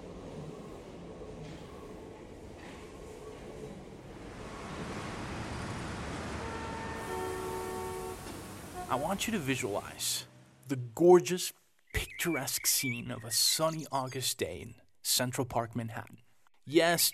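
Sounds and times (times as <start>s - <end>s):
subway train rumbling along the tracks: 0.0s - 10.6s
speech: 8.9s - 17.1s.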